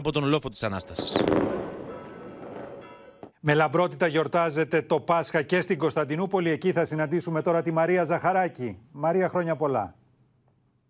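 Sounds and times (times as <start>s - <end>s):
speech: 0.0s - 1.6s, 3.4s - 10.0s
fireworks exploding over the town on Syros, Greece: 1.0s - 3.4s
rolling crackles and booms of fireworks echoing across open space: 1.0s - 3.4s.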